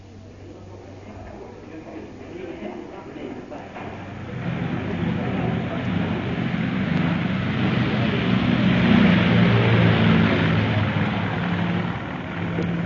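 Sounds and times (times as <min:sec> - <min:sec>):
airplane engine drone at an airport: 0:00.0 - 0:12.8.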